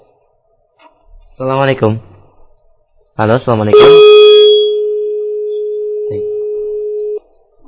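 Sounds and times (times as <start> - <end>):
speech: 1.4 - 2.1, 3.2 - 4.1
steady single-pitched telephone tone on a dead call-in line: 3.7 - 7.2.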